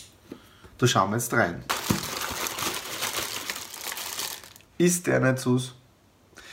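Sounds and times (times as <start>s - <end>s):
speech: 0.8s - 2.0s, 4.8s - 5.8s
plastic packaging crinkling as an ordered package is unwrapped: 1.7s - 4.7s.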